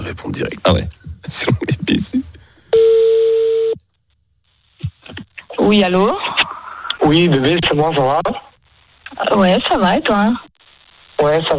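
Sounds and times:
speech: 0.1s - 3.1s, 5.6s - 6.5s, 7.1s - 8.5s, 9.2s - 10.5s, 11.2s - 11.5s
steady telephone tone as a call is placed over a phone line: 2.7s - 3.8s.

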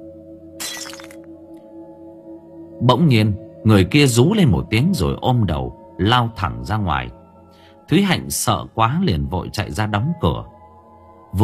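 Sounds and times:
glass fragments tinkling: 0.6s - 1.2s
glass mirror falling from a table to the floor and shattering: 0.6s - 1.3s
speech: 2.8s - 7.2s, 7.9s - 10.6s.

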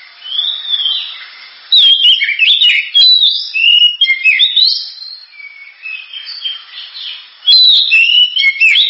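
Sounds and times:
Oriental magpie-robin singing whistled phrases and chattering notes: 0.2s - 8.8s.

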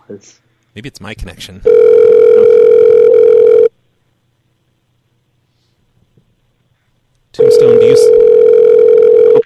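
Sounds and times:
speech: 0.1s - 3.6s
steady electronic telephone ringing tone on a call: 1.7s - 3.7s, 7.4s - 9.4s.

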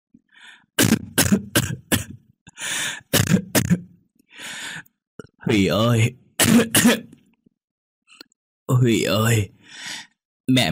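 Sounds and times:
speech: 0.4s - 1.6s, 5.5s - 7.2s, 8.7s - 10.7s
seriously ill old woman coughing harshly inside a house at night: 0.8s - 2.2s, 3.1s - 3.9s, 6.4s - 7.2s.

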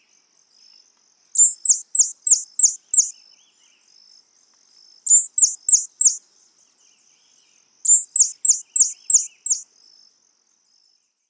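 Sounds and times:
faint thin continuous tone: 0.0s - 11.2s
White-chinned Sapphire Hylocharis cyanus griseiventris chip calls: 1.4s - 3.1s, 5.1s - 6.2s, 7.9s - 9.6s.

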